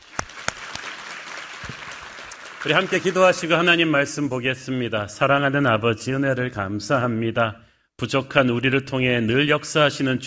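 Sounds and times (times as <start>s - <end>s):
congregation clapping during a church service: 0.0s - 4.0s
speech: 2.6s - 10.2s.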